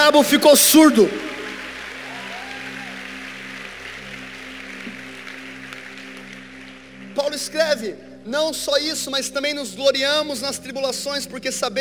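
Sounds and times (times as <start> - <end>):
speech: 0.1 - 1.4, 7.4 - 11.7
audience applauding: 0.4 - 7.5.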